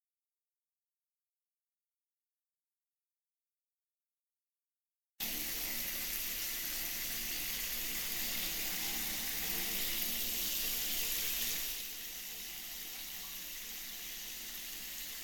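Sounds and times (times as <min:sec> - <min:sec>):
shower water running: 0:05.2 - 0:15.2.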